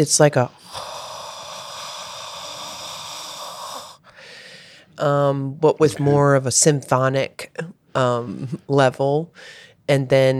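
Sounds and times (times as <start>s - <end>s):
speech: 0.0s - 0.9s, 5.0s - 10.3s
voice imitating a white-noise sleep machine with breathy hiss: 0.6s - 4.1s.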